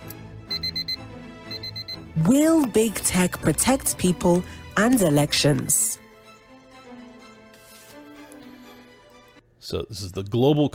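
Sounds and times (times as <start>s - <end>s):
clock alarm beeping with high electronic beeps: 0.5s - 2.1s
speech: 2.2s - 6.0s, 9.7s - 10.7s.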